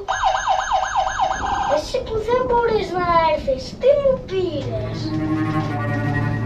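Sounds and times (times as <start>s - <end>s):
toy fire truck siren wailing: 0.0s - 1.7s
speech: 2.0s - 6.3s.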